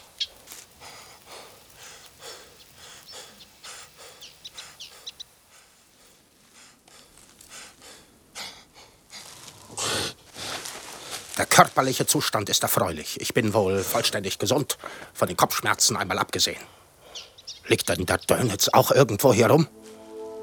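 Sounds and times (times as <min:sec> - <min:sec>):
bird chirping and singing in a tree: 0:00.0 - 0:05.5
speech: 0:11.6 - 0:16.8, 0:17.7 - 0:19.8.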